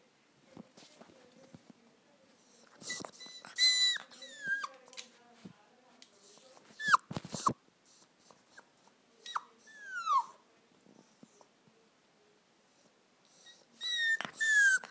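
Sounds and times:
young puppy crying: 2.6 - 5.0, 6.2 - 10.4, 13.3 - 14.8.

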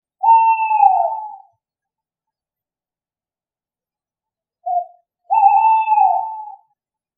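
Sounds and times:
tawny owl hooting: 0.2 - 1.5, 4.6 - 6.8.

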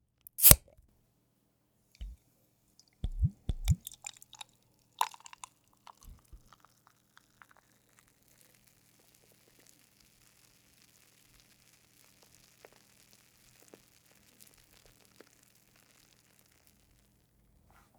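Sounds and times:
beer bottle opening: 0.3 - 0.7, 3.0 - 4.1
beer fizzing: 3.0 - 4.4, 5.0 - 16.8.

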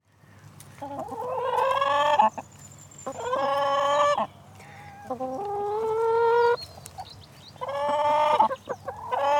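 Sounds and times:
wind: 0.0 - 9.3
speech: 0.8 - 1.3
chickens squawking and clucking: 0.8 - 2.4, 3.1 - 7.0, 7.6 - 9.3
birdsong: 2.2 - 9.3.

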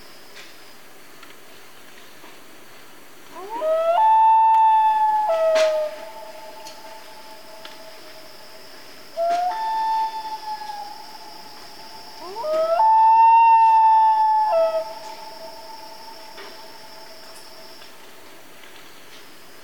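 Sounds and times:
faint high steady hiss: 0.0 - 19.6
common loon family group wailing in Canada: 3.3 - 8.3, 9.2 - 17.3.

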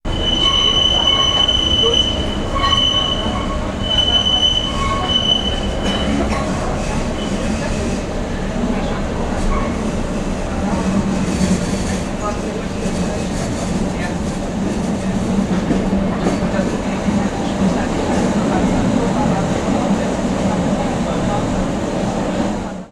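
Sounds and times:
public transport ambience in Berlin: 0.0 - 22.8.

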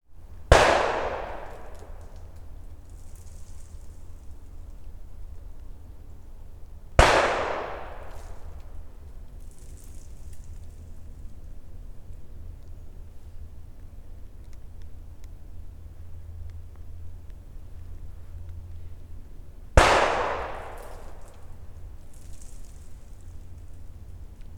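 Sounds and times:
gunshots: 0.5 - 2.0, 7.0 - 8.4, 19.8 - 21.3.

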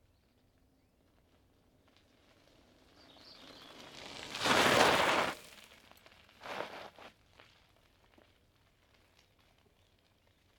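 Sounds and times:
bicycle stopping: 1.1 - 7.9.

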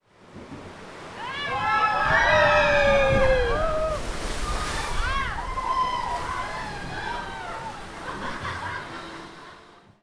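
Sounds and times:
people screaming on a water ride: 1.1 - 8.2
laughter: 7.5 - 9.7.

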